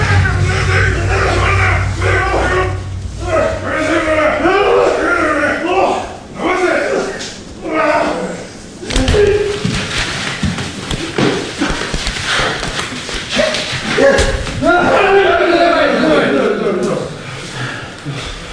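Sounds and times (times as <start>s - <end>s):
shouted voices: 0.0s - 9.6s, 13.3s - 17.1s
sumo wrestlers grunting: 0.0s - 9.6s, 11.5s - 16.8s
sharp slaps of sumo wrestlers in training: 8.9s - 14.6s.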